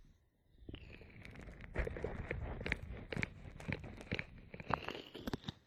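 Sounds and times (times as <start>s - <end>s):
crunchy rubbing strokes of an ear massage: 0.9s - 5.6s.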